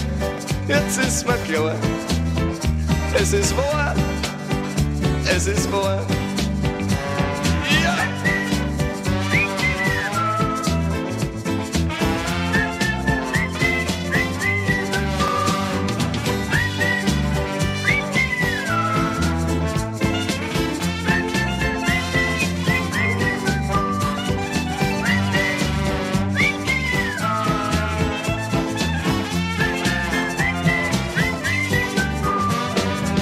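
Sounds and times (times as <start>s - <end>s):
full band backing of bass, drums and instruments: 0.0s - 33.2s
speech: 0.7s - 4.2s, 5.3s - 6.2s
person whistling a clear sliding melody: 7.7s - 11.3s, 12.2s - 33.2s.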